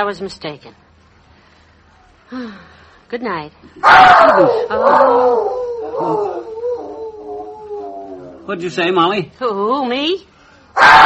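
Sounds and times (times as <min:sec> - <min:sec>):
speech: 0:00.0 - 0:00.8, 0:02.3 - 0:06.5, 0:08.5 - 0:11.0
dog howling: 0:03.8 - 0:08.7, 0:10.8 - 0:11.0.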